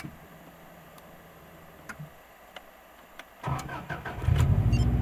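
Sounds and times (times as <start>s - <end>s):
engine starting heard from inside: 3.4s - 4.9s.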